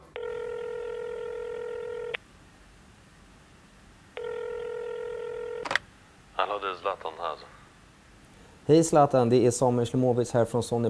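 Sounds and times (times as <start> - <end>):
outgoing telephone call ringing tones: 0.0 - 8.6
speech: 6.5 - 7.6, 8.7 - 10.8.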